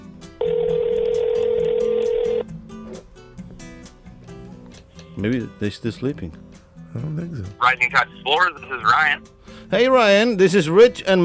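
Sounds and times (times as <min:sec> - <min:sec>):
outgoing phone call electronic ring tone: 0:00.4 - 0:02.5
speech: 0:05.2 - 0:11.2.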